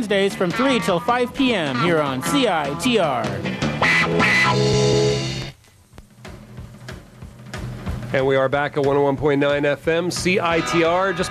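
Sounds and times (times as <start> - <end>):
speech: 0.0 - 5.3, 8.1 - 11.2
electric guitar played through a wah-wah pedal: 0.0 - 5.6, 10.4 - 11.2.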